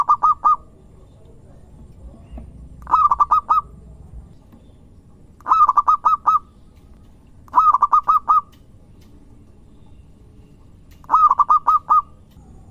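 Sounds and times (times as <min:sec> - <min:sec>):
zebra dove singing clipped cooing notes: 0:00.0 - 0:00.8, 0:02.1 - 0:04.0, 0:05.4 - 0:06.7, 0:07.5 - 0:08.6, 0:11.0 - 0:12.6.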